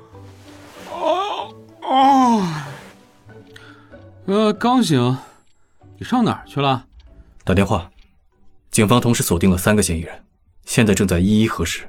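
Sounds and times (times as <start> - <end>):
person yawning as if just woken up: 0.9 - 3.0
speech: 4.3 - 5.3, 6.0 - 7.9, 8.8 - 11.8.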